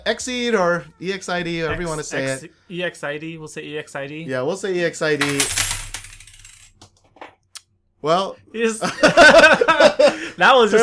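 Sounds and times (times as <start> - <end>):
speech: 0.0 - 5.8, 8.0 - 10.8
stack of coins toppling and spilling: 5.2 - 6.8
laughter: 8.8 - 10.8.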